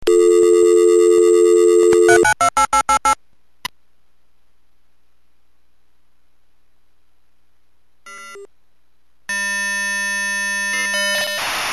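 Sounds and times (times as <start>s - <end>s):
SM56 V32bis modem sounds: 0.0s - 3.2s, 9.3s - 11.6s.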